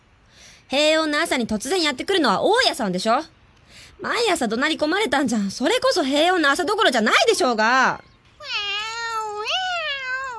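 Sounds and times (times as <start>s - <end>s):
speech: 0.7s - 3.4s, 4.0s - 8.6s
cat meowing: 8.4s - 10.3s.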